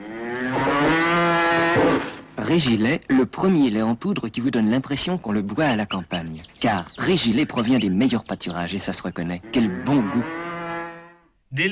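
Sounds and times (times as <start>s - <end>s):
cow mooing in a French television advert for powdered milk: 0.0s - 2.1s, 9.4s - 11.2s
speech: 2.5s - 10.4s, 11.5s - 11.7s.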